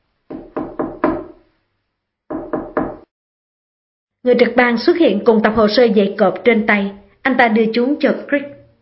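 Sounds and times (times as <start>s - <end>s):
firm knocks on a door: 0.3s - 1.4s, 2.3s - 3.1s
speech: 4.2s - 8.6s.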